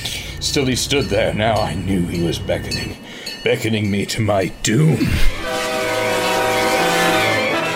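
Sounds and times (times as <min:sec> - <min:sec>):
approaching train bell ringing: 0:00.0 - 0:07.7
speech: 0:00.4 - 0:05.6
approaching train whistle blaring: 0:05.2 - 0:07.7.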